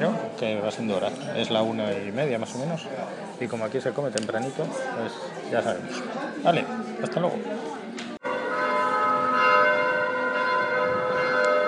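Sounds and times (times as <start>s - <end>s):
speech: 0.0s - 7.8s
church bells ringing in a dense sustained peal: 8.2s - 11.6s.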